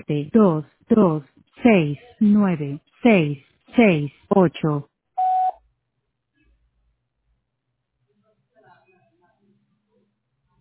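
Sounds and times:
speech: 0.0 - 4.9
voicemail beep: 5.2 - 5.6.

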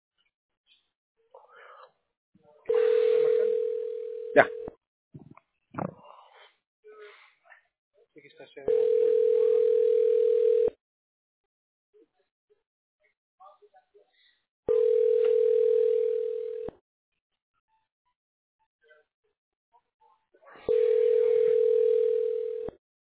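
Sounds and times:
telephone dial tone beeps: 2.7 - 4.7, 8.7 - 10.8, 14.7 - 16.7, 20.7 - 22.8
speech: 4.4 - 4.7, 8.3 - 9.3.

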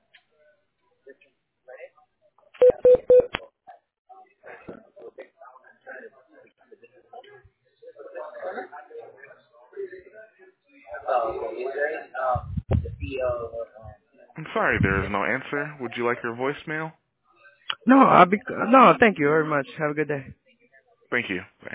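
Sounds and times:
telephone keypad tones during a call transfer: 2.6 - 3.3
low thump: 12.4 - 13.4
speech: 14.6 - 17.0, 17.8 - 20.4, 21.1 - 21.5.

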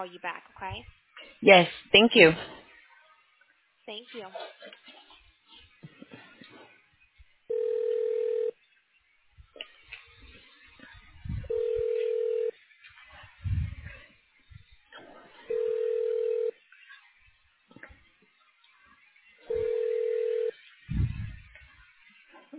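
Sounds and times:
speech: 0.0 - 2.6, 3.9 - 5.0
faint noises: 0.0 - 22.5
telephone tones on a narrowband phone line during a call transfer: 7.5 - 8.5, 11.5 - 12.5, 15.5 - 16.5, 19.5 - 20.5.

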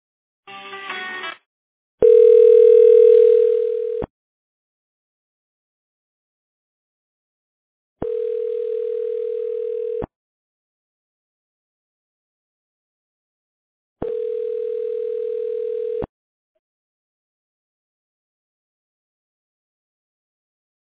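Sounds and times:
telephone ringback tone while a call is transferred to voicemail: 2.0 - 4.1, 8.0 - 10.1, 14.0 - 16.1.

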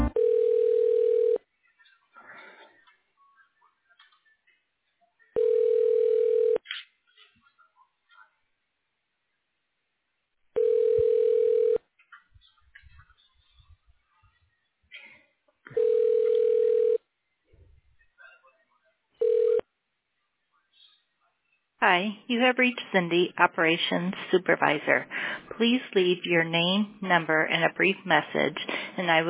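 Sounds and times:
phone line ringing back over a narrow telephone connection during call transfer: 0.2 - 1.4, 5.4 - 6.6, 10.6 - 11.8, 15.7 - 17.0, 19.2 - 19.6
speech: 21.8 - 29.2.

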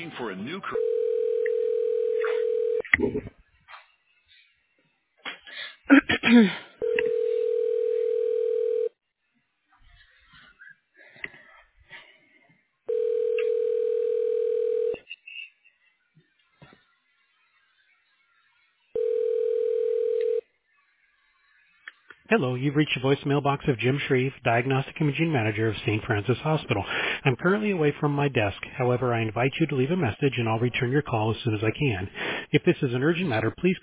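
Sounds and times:
speech: 0.1 - 0.9, 3.0 - 3.4, 5.9 - 6.6, 22.3 - 33.8
telephone ringback tone while a call is transferred: 0.7 - 2.8, 6.8 - 9.0, 12.9 - 15.0, 19.0 - 20.5.

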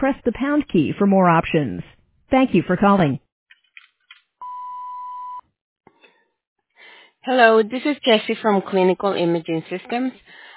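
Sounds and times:
speech: 0.0 - 3.2, 7.2 - 10.4
voicemail recording electronic beep: 4.4 - 5.4.

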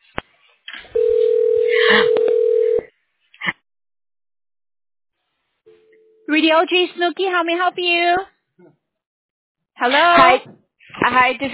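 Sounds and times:
telephone line ringing while a call is connected: 1.0 - 2.9
speech: 6.5 - 8.3, 9.8 - 11.5.

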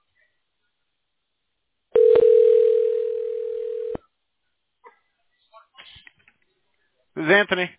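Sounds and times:
telephone dial tone during call transfer: 2.0 - 4.0
speech: 7.2 - 7.7.

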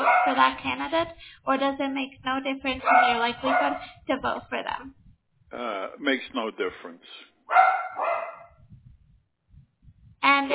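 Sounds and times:
dog barking sharply: 0.0 - 0.5, 2.8 - 4.0, 7.5 - 8.6
speech: 0.3 - 8.3, 10.2 - 10.5.

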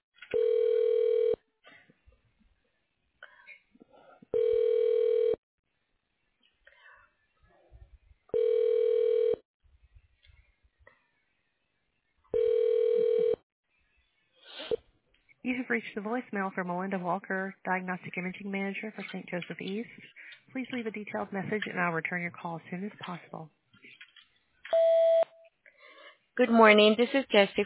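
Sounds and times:
telephone ringback tone during a call transfer: 0.3 - 1.4, 4.3 - 5.4, 8.3 - 9.4, 12.3 - 13.4
speech: 15.5 - 23.6, 26.4 - 27.6.

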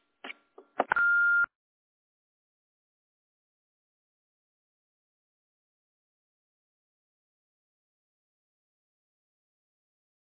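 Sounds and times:
electronic voicemail beep: 0.9 - 1.5.

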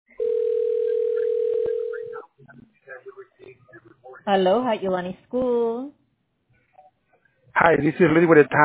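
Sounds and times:
ringback tone on an outgoing phone call: 0.2 - 2.2
person answering and talking on a phone call: 0.3 - 4.4
speech: 4.3 - 6.0, 7.6 - 8.6.

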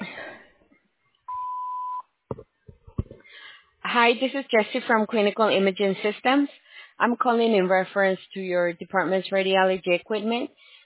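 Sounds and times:
voicemail recording beep: 1.3 - 2.0
speech: 3.9 - 10.7.

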